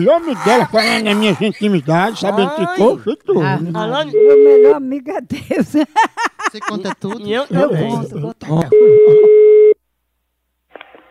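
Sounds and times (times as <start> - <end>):
laughter: 0.0 - 9.5
speech: 0.0 - 9.5
telephone ringback tone while placing a call: 4.2 - 4.8, 8.7 - 9.8.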